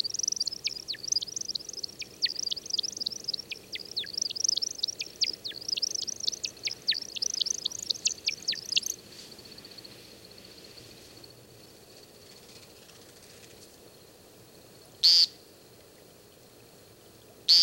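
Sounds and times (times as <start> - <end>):
male American woodcock chirping whistles during display descent: 0.0 - 9.0.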